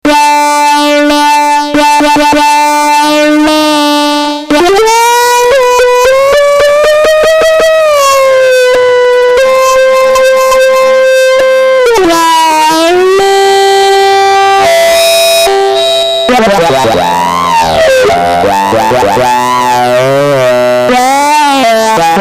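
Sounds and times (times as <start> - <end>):
dirty lead: 0.0 - 22.1.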